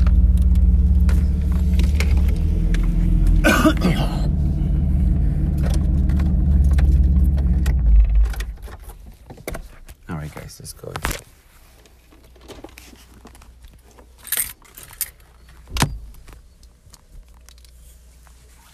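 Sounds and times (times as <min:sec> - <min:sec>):
car engine rumbling while being parked: 0:00.0 - 0:09.8.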